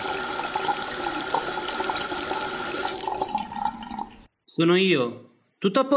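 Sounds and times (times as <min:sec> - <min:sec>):
cold tap water running into a sink: 0:00.0 - 0:04.3
speech: 0:04.6 - 0:05.9.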